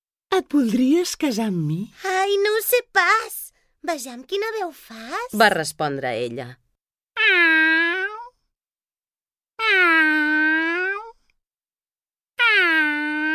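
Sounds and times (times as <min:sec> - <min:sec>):
speech: 0:00.4 - 0:06.6, 0:07.2 - 0:07.8
human voice imitating a cat meowing softly: 0:07.2 - 0:08.3, 0:09.6 - 0:11.2, 0:12.4 - 0:13.3.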